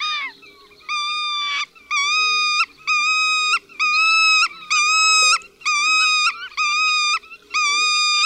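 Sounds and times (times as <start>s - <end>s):
alarmed bird giving plaintive single-syllable calls: 0.0s - 8.2s.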